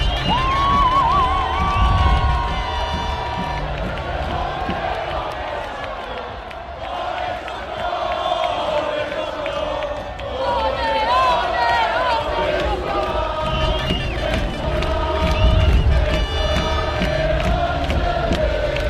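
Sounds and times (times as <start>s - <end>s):
whistles in a huge crowd: 0.0s - 3.5s, 13.4s - 14.6s, 15.2s - 16.8s
huge crowd cheering and shouting around an open-top bus parade at the Old Port: 0.0s - 18.8s.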